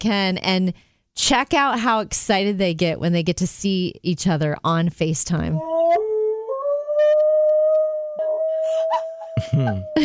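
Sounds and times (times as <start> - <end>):
speech: 0.0 - 6.0, 8.9 - 10.0
dogs howling at each other over a video call: 5.7 - 10.0
dog yips: 8.6 - 9.3
laughter: 9.0 - 10.0.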